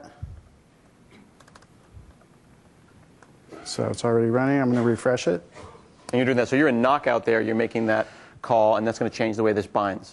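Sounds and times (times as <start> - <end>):
computer keyboard typing: 1.4 - 1.7
speech: 3.6 - 10.1.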